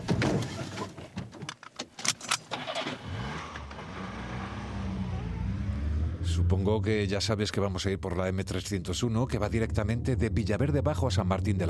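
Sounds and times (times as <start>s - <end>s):
clicks and rattles: 0.0s - 2.8s
car starting and driving off: 2.5s - 7.1s
speech: 6.4s - 11.6s.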